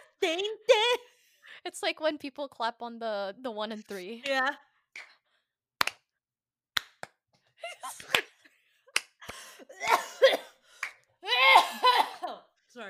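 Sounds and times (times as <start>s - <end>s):
speech: 0.2s - 0.8s, 1.6s - 5.1s
person coughing: 9.6s - 10.6s, 11.3s - 12.5s.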